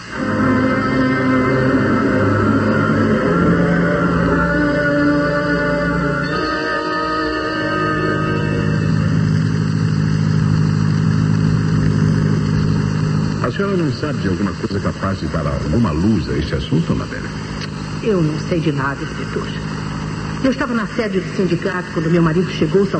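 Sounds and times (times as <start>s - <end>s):
car engine starting and driving off: 0.0s - 14.4s
speech: 13.7s - 17.3s, 18.0s - 19.7s, 20.4s - 22.9s.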